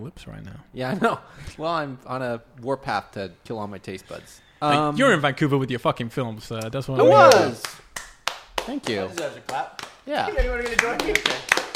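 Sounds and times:
speech: 0.0s - 7.8s, 8.7s - 11.6s
overlapping voices: 7.0s - 11.7s
sharp hand claps: 7.1s - 11.7s.

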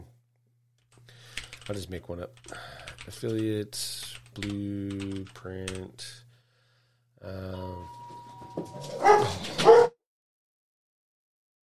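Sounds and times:
speech: 1.7s - 6.2s, 7.2s - 8.0s, 8.6s - 9.8s
dog whining: 8.7s - 9.9s
dogs barking: 9.0s - 10.0s.

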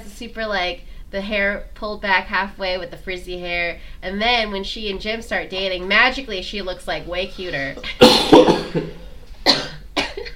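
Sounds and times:
speech: 0.2s - 9.0s
person coughing: 7.8s - 10.3s.

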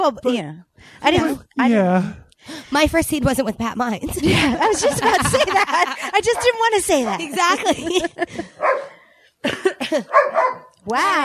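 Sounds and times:
speech: 0.0s - 11.2s
laughter: 4.0s - 8.7s
dogs barking and yelping: 6.3s - 7.7s, 8.4s - 9.0s, 10.0s - 10.8s.

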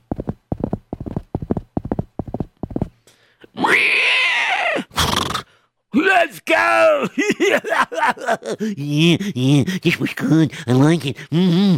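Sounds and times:
horse hooves galloping: 0.0s - 3.0s
speech: 3.6s - 4.0s, 6.0s - 11.7s
loud drawn-out whinny-like cry: 3.6s - 5.4s
laughter: 7.0s - 9.6s.

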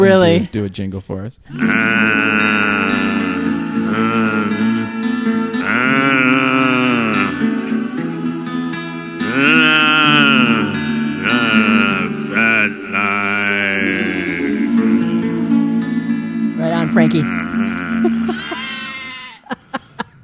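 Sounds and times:
speech: 0.0s - 2.8s, 17.0s - 17.5s
person exclaiming: 1.5s - 5.0s, 9.3s - 14.8s, 16.6s - 19.4s
laughter: 1.5s - 7.7s, 9.2s - 15.7s, 16.6s - 20.2s
sheep bleating: 1.5s - 8.1s, 8.7s - 19.4s
steady low drone: 1.5s - 19.2s.

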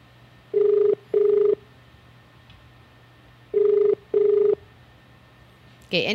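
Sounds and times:
faint hum: 0.0s - 6.1s
phone line ringback tone of short steady buzzes: 0.5s - 1.6s, 3.5s - 4.6s
speech: 5.9s - 6.1s.

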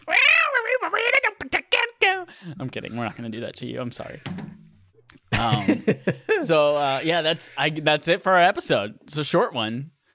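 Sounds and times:
person imitating cat meowing: 0.0s - 2.0s
speech: 2.5s - 4.5s, 5.4s - 10.0s.

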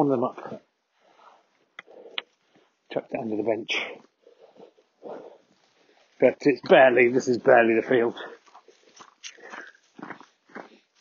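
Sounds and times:
speech: 0.0s - 0.7s, 2.9s - 4.1s, 6.2s - 8.4s
faint breathing: 0.8s - 2.8s, 3.8s - 6.2s, 8.1s - 10.0s
footsteps crunching on snow: 4.6s - 10.9s.

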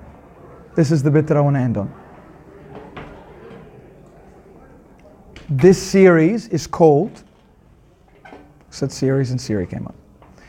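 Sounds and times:
speech: 0.8s - 2.0s, 5.5s - 7.3s, 8.8s - 10.0s
door pushed shut with a muffled thud: 2.6s - 3.7s.

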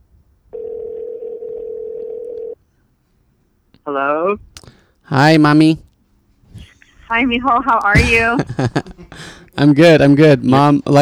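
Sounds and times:
electronic ringback tone from an outgoing phone call: 0.5s - 2.6s
speech: 3.9s - 5.9s, 7.1s - 11.0s
laughter: 6.6s - 9.7s.

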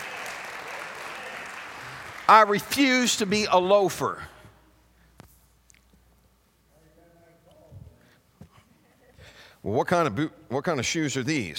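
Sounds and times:
audience clapping hands: 0.0s - 3.8s
speech: 2.3s - 4.3s, 9.6s - 11.5s.

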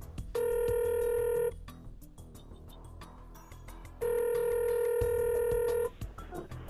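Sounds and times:
electronic ringback tones through a phone line: 0.4s - 1.6s, 4.0s - 6.0s.

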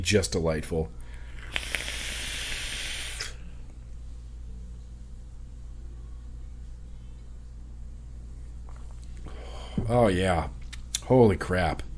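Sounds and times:
speech: 0.0s - 1.0s, 9.9s - 11.9s
quiet hum with faint low rumble: 0.0s - 11.9s
vapor hiss from an atomizer with a drip tip: 1.0s - 3.6s.

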